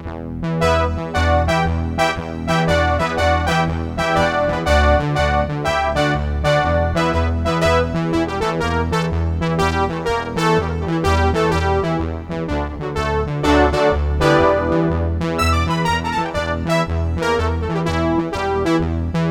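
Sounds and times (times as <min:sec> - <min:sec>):
Korg DSS-1 sawtooth synthesizer: 0:00.4 - 0:09.1, 0:10.2 - 0:19.2
Korg DSS-1 synthesizer oboe reed sound: 0:00.6 - 0:09.1, 0:13.4 - 0:19.1.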